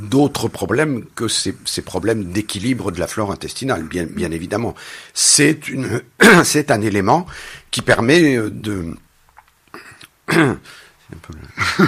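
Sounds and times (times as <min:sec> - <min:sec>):
speech: 0:00.1 - 0:09.0, 0:09.7 - 0:11.8
throat clearing from a scratchy, irritated throat: 0:09.8 - 0:10.6.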